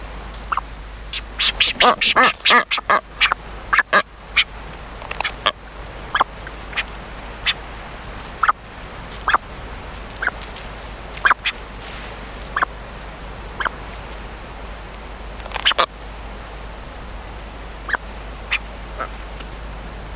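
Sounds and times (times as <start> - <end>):
brown booby giving harsh quacking honks: 0.5 - 4.5, 5.2 - 10.4, 11.1 - 11.6, 12.5 - 12.8, 13.5 - 13.8, 15.6 - 15.9, 17.8 - 19.3.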